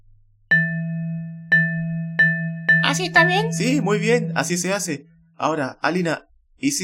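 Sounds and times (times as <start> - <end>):
xylophone being struck: 0.5 - 5.2
speech: 2.9 - 6.8.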